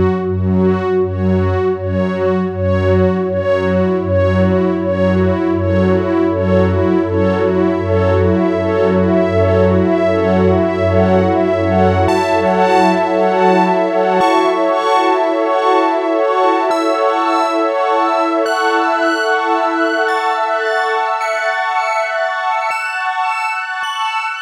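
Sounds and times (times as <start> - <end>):
modulated synth pad: 0.2 - 24.3.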